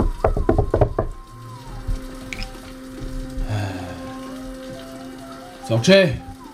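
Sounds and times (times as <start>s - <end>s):
sharp knocks on a wooden apartment door: 0.0s - 1.2s
low steady hum: 1.1s - 6.5s
speech: 5.7s - 6.3s.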